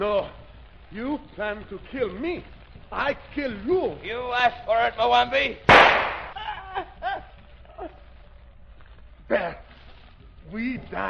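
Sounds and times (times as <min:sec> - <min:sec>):
quiet gliding sounds: 0:00.0 - 0:05.7, 0:06.3 - 0:11.0
speech: 0:00.0 - 0:06.1, 0:06.8 - 0:07.1, 0:09.3 - 0:09.7, 0:10.5 - 0:11.0
gunshot in a radio drama: 0:05.7 - 0:06.4
laughter: 0:06.2 - 0:08.1.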